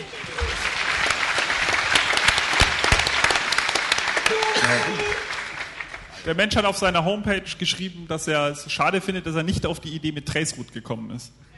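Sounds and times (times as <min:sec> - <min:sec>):
crowd applauding: 0:00.0 - 0:06.3
speech: 0:04.7 - 0:05.3, 0:06.2 - 0:11.5.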